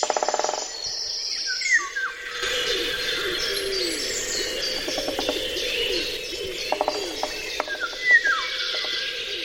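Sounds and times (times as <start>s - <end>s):
great spotted woodpecker rapid knocking: 0.0s - 0.7s, 4.7s - 9.1s
cuckoo calling in woodland: 0.0s - 9.4s
insect-like hum: 0.0s - 9.4s
golden orioles whistles and chirps in woodland bird chorus: 1.4s - 9.4s.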